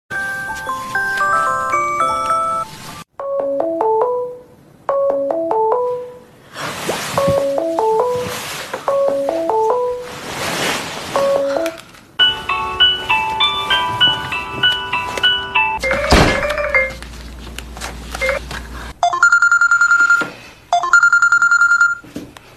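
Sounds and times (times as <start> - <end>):
Samsung phone ringtone: 0.1 - 6.2, 7.2 - 10.1, 11.2 - 17.0, 19.0 - 22.0.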